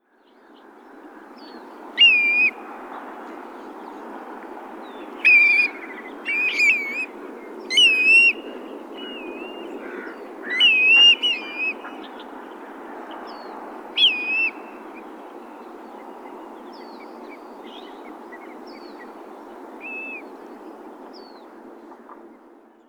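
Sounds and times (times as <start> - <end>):
Grey plover Pluvialis squatarola calling: 2.0 - 2.5, 5.2 - 7.1, 7.7 - 8.4, 9.0 - 12.0, 14.0 - 14.6.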